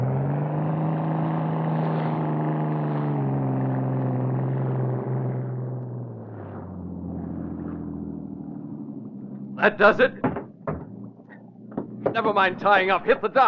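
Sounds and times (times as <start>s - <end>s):
motorboat engine roaring across water: 0.0s - 13.4s
speech: 9.6s - 10.3s, 12.2s - 13.4s.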